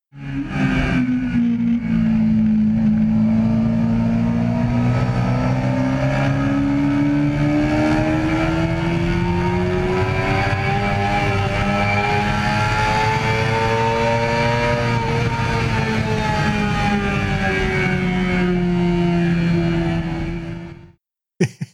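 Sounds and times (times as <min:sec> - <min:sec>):
race car R6 engine revving hard after a missed shift: 0:00.2 - 0:20.8.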